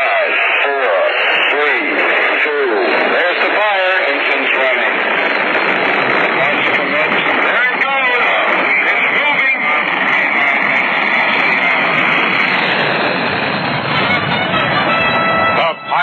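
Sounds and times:
Saturn V rocket engines igniting at launch via radio-style broadcast: 0:00.0 - 0:16.0.

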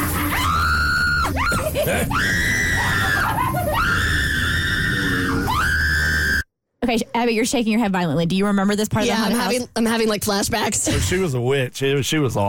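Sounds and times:
person screaming in fright: 0:00.0 - 0:06.4
speech: 0:01.9 - 0:02.6, 0:06.9 - 0:12.4.

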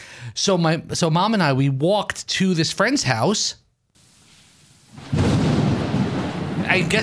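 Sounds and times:
speech: 0:00.2 - 0:03.6, 0:06.7 - 0:07.0
pouring rain sound effect: 0:04.0 - 0:07.0
thunder crack and rumble sound effect: 0:04.9 - 0:07.0.

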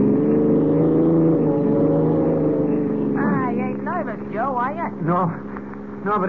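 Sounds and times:
car engine droning at speed: 0:00.0 - 0:06.2
speech: 0:05.0 - 0:06.2.

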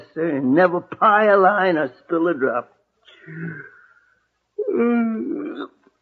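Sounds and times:
speech: 0:00.2 - 0:03.8, 0:04.6 - 0:05.8
person yawning: 0:03.2 - 0:03.9, 0:04.6 - 0:05.7.

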